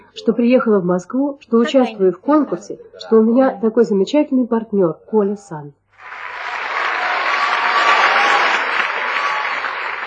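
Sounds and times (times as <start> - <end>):
speech: 0.2 - 6.3
large audience applause after a performance: 6.0 - 10.0.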